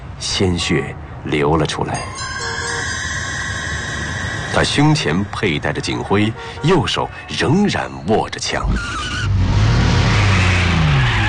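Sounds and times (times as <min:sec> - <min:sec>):
speech: 0:00.2 - 0:02.7, 0:04.5 - 0:09.2
tonal whine: 0:02.1 - 0:06.6
Buick car engine roaring while speeding off onto a road: 0:02.2 - 0:07.5, 0:08.6 - 0:11.2
Buick tires squealing: 0:02.2 - 0:07.9, 0:08.5 - 0:11.2.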